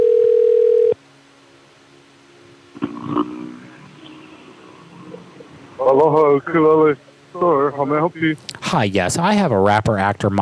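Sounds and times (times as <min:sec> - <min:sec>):
telephone handset noise: 0:00.0 - 0:01.0
telephone ring tone on an outgoing call to a ukulele store: 0:00.0 - 0:01.0
faint telephone line hum: 0:00.0 - 0:10.4
speech: 0:08.1 - 0:10.4.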